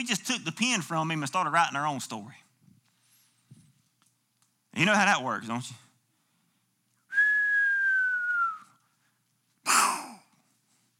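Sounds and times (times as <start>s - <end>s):
speech: 0.0s - 2.5s, 4.8s - 5.8s
person whistling a long gently falling tone: 7.1s - 8.8s.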